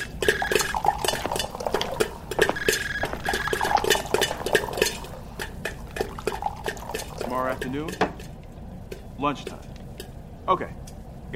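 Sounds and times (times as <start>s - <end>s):
lemonade being poured into glasses: 0.0s - 7.9s
speech: 7.6s - 8.1s, 9.2s - 9.7s, 10.5s - 11.3s.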